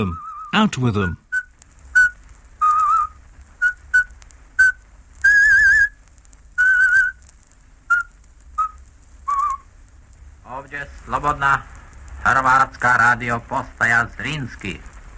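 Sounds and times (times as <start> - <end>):
person whistling a traditional folk song: 0.0 - 0.6, 1.3 - 6.0, 6.6 - 7.2, 7.9 - 9.6
speech: 0.0 - 1.2, 11.1 - 14.9.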